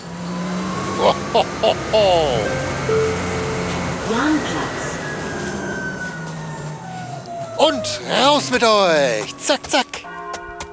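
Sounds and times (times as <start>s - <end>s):
moving bus engine rumble: 0.0s - 10.0s
laughter: 1.0s - 2.9s, 7.6s - 10.0s
speech: 1.0s - 3.4s, 4.1s - 4.7s, 7.6s - 10.1s
short electronic beeps and chimes: 2.2s - 5.0s.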